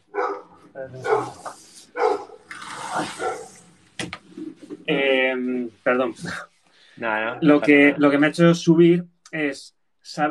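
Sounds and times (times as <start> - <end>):
dog barking: 0.0 - 2.5, 3.2 - 3.6
dog yipping: 0.1 - 1.4, 2.0 - 2.5, 3.2 - 3.5
speech: 0.8 - 1.5, 5.4 - 10.2.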